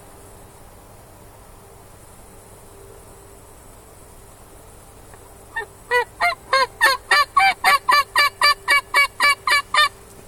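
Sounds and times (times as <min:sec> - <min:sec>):
wild turkey hens and young jakes yelping near a food plot: 0:05.5 - 0:10.0.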